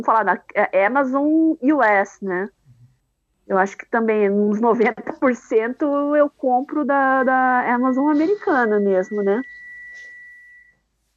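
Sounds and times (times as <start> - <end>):
speech: 0.0 - 2.6, 3.5 - 10.1
stove high-pitched electronic beep: 6.7 - 10.7.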